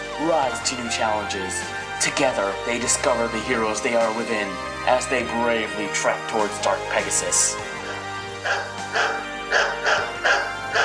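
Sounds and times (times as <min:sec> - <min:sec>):
speech: 0:00.2 - 0:07.8, 0:08.4 - 0:09.6
dog barking in sharp yaps: 0:07.8 - 0:10.8.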